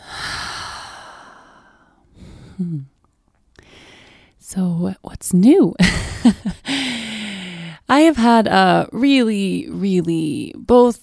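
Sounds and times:
slow deep breath in and out: 0.0 - 2.9, 3.6 - 4.4, 6.6 - 7.8
speech: 2.6 - 3.0, 4.5 - 7.1, 7.9 - 11.0.

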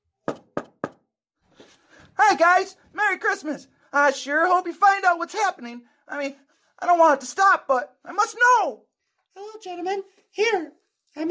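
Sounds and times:
knocking on a door: 0.3 - 1.0
speech: 2.2 - 11.2.

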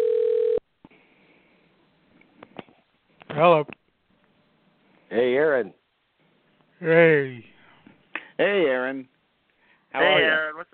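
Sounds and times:
telephone ringback tone on an outgoing call: 0.0 - 0.6
speech: 3.4 - 3.8, 5.1 - 5.8, 6.8 - 7.5, 8.4 - 9.1, 10.0 - 10.7.

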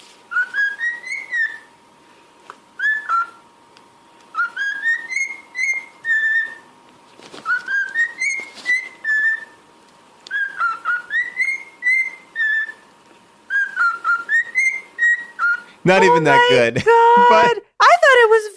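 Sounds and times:
cockatiel whistling a melodic tune: 0.3 - 1.7, 2.8 - 3.4, 4.3 - 6.7, 7.4 - 9.6, 10.3 - 12.9, 13.5 - 16.6
speech: 15.9 - 17.6.

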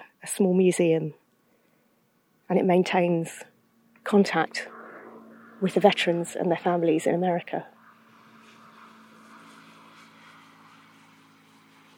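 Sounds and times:
speech: 0.4 - 1.2, 2.5 - 3.5, 4.1 - 4.8, 5.6 - 7.7
scooter passing by: 3.8 - 11.9.

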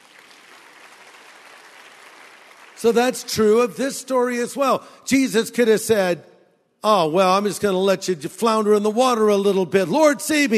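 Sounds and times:
audience applause: 0.0 - 3.2
speech: 2.8 - 10.5.

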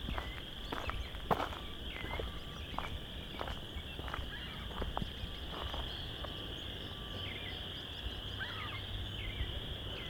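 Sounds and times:
crunching footsteps: 0.0 - 6.4
chorus frogs trilling in a marsh in late March: 0.0 - 10.0.

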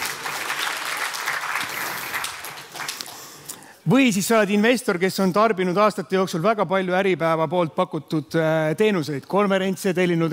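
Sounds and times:
crowd applauding: 0.0 - 3.5
speech: 3.9 - 10.3.

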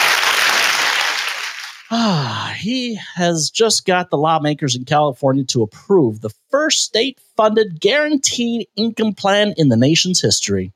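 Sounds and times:
audience applause: 0.0 - 1.9
speech: 1.9 - 10.7.

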